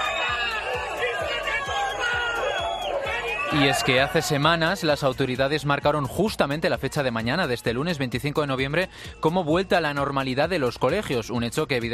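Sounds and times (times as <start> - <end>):
scattered shouts rising from the crowd: 0.0 - 7.9
large crowd booing and jeering: 0.0 - 11.1
speech: 3.5 - 11.9.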